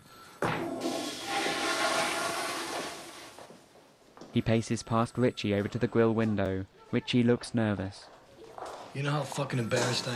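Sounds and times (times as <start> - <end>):
toilet flushing with a rush of water: 0.6 - 3.5
speech: 4.4 - 8.2, 9.0 - 10.1.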